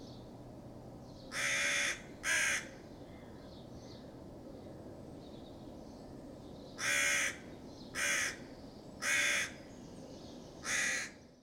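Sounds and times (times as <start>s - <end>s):
crows giving alarm calls in response to a fox: 1.3s - 3.3s, 6.8s - 9.6s, 10.6s - 11.2s.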